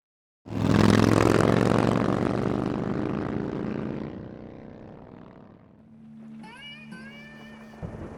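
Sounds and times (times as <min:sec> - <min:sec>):
new Harley motorcycle engine revving: 0:00.5 - 0:08.1
faint whine: 0:03.8 - 0:08.1.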